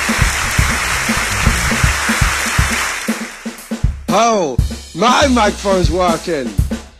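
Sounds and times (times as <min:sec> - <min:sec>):
applause: 0:00.0 - 0:03.8
speech: 0:04.1 - 0:06.6.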